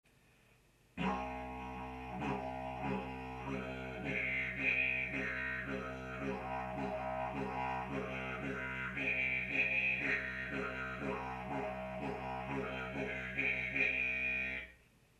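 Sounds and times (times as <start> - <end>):
didgeridoo rhythm played with the throat: 1.0 - 14.7.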